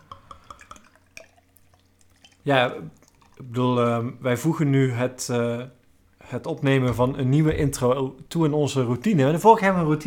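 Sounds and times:
saison beer poured into a glass: 0.0 - 3.6
speech: 2.4 - 10.0.

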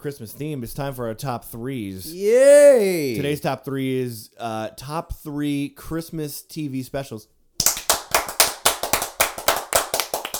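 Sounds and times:
speech: 0.0 - 7.4
hands clapping: 7.6 - 10.3.

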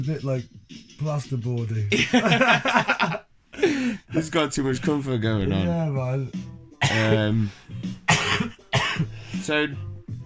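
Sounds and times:
speech: 0.0 - 8.0, 9.4 - 9.9
laughter: 1.9 - 3.2
harsh throaty coughing after a hit from a pipe: 6.8 - 9.2.

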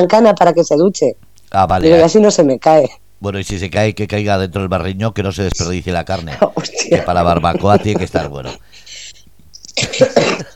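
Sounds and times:
speech: 0.0 - 8.7, 9.8 - 10.5
laughter: 6.1 - 9.2
harsh raspy coughs: 9.8 - 10.5.

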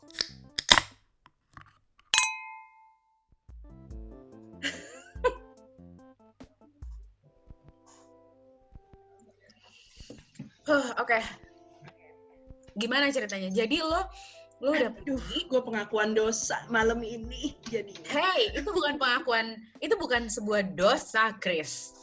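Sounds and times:
small handling noises: 0.0 - 0.9
glasses clinking in a toast: 2.2 - 2.9
speech: 10.7 - 11.4, 12.8 - 22.0.

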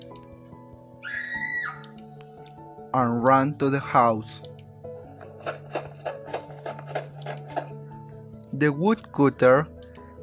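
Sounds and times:
loud high-pitched scream: 1.0 - 1.9
speech: 2.9 - 4.5, 8.6 - 9.8.

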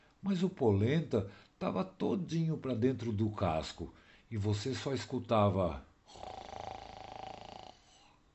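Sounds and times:
speech: 0.2 - 6.4
person snoring: 6.1 - 8.2.

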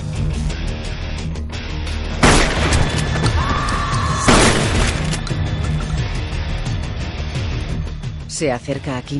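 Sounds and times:
dense noisy action film soundtrack: 0.0 - 9.1
sawed-off shotgun blasts in a film scene: 2.2 - 3.2, 4.3 - 5.2
speech: 8.4 - 9.1.

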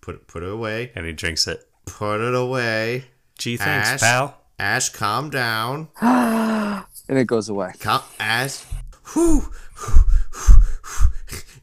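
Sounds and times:
speech: 0.0 - 10.5
brief voiced gasp: 6.0 - 6.9, 9.0 - 11.6
quick panting breaths: 8.7 - 11.6.

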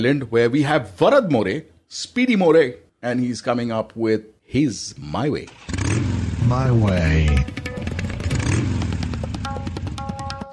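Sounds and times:
speech: 0.0 - 7.6
motorcycle engine revving in Chiang Mai Thailand: 5.5 - 10.0.

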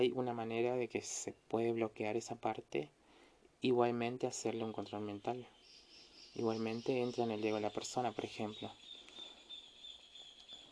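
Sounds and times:
speech: 0.0 - 3.0, 3.6 - 5.6, 6.3 - 8.9
small birds singing in the morning: 3.8 - 10.6.

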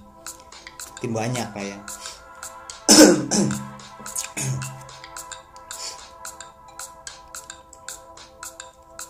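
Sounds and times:
speech: 1.0 - 2.0, 3.0 - 3.7
person coughing: 2.9 - 4.8.

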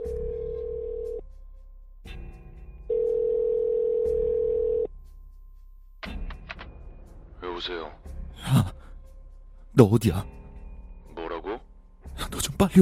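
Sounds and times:
ringback tone of an outgoing call through a mobile phone earpiece: 0.0 - 1.2, 2.9 - 4.9
speech: 7.6 - 8.7, 9.8 - 10.4, 12.4 - 12.7.

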